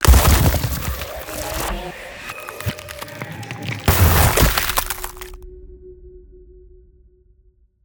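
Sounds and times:
ice spell effect: 0.0 - 5.4.

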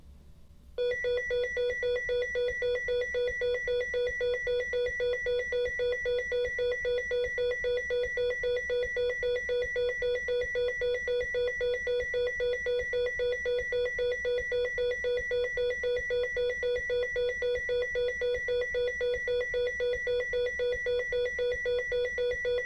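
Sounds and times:
medical EKG heart monitor beeping: 0.8 - 22.6.

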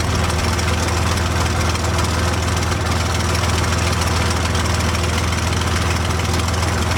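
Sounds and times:
P40 airplane engine idling heard from interior: 0.0 - 6.9.

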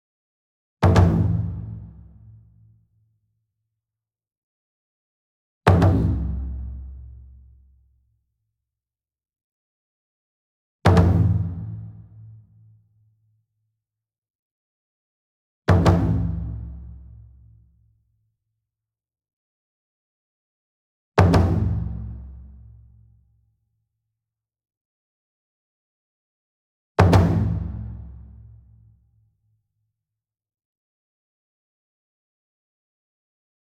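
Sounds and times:
28 inch taiko drum hit with double soft beater, medium: 0.8 - 2.3, 5.7 - 7.5, 10.9 - 12.2, 15.7 - 17.5, 21.2 - 22.7, 27.0 - 28.6.

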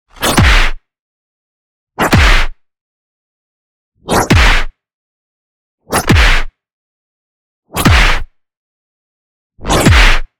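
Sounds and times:
power punch impact: 0.2 - 0.8, 2.0 - 2.6, 4.1 - 4.7, 6.0 - 6.5, 7.8 - 8.3, 9.6 - 10.3.

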